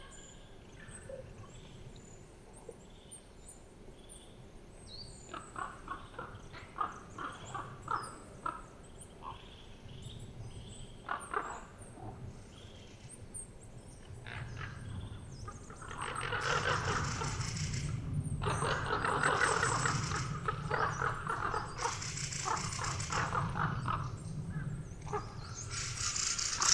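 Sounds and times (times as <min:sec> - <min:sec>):
flock of ravens calling on the way to roost: 0:05.2 - 0:10.3, 0:10.9 - 0:13.0, 0:14.0 - 0:26.7.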